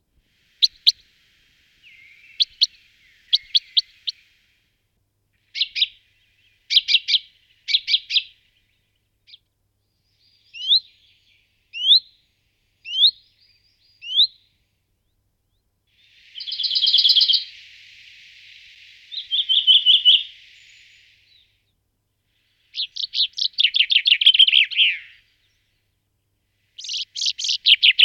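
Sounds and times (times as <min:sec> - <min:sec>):
common chaffinch Fringilla coelebs calls: 0:00.6 - 0:01.0, 0:01.8 - 0:04.2, 0:05.5 - 0:08.4, 0:10.1 - 0:12.1, 0:16.0 - 0:17.6, 0:19.1 - 0:21.5, 0:22.6 - 0:25.6, 0:26.8 - 0:28.0.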